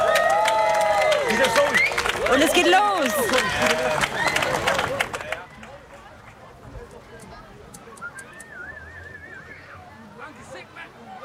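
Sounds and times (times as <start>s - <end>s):
audience whooping and shouting: 0.0s - 4.9s
crowd clapping for two performers: 0.0s - 6.5s
speech: 2.3s - 4.2s.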